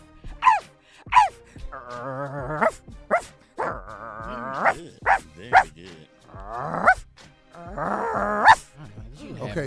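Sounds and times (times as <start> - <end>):
person imitating a dog with yelping barks and whining howls: 0.4 - 7.0, 7.6 - 8.6.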